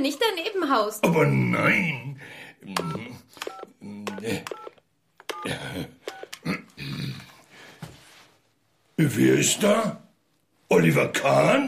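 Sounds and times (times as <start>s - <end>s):
speech: 0.0s - 4.8s, 5.4s - 7.2s, 9.0s - 10.0s, 10.7s - 11.6s
vocal noises: 1.0s - 4.6s, 5.4s - 7.5s
mobile phone keypad tones: 2.8s - 6.5s.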